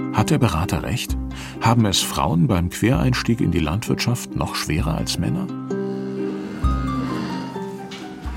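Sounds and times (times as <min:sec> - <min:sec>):
speech: 0:00.1 - 0:05.7
cow mooing: 0:05.7 - 0:08.2.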